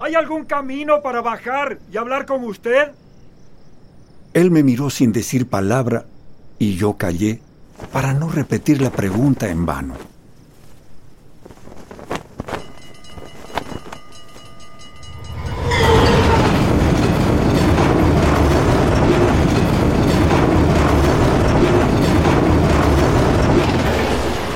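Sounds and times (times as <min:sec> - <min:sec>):
speech: 0:00.1 - 0:03.0, 0:04.4 - 0:10.1
steam train wheels rumbling and rattling: 0:11.5 - 0:24.5
steam train passing: 0:12.6 - 0:24.5.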